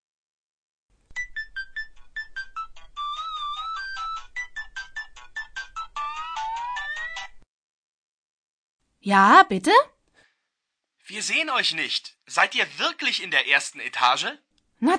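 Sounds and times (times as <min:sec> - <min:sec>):
phone ringtone for an incoming call: 0:01.2 - 0:07.4
speech: 0:09.0 - 0:10.0, 0:11.1 - 0:14.9.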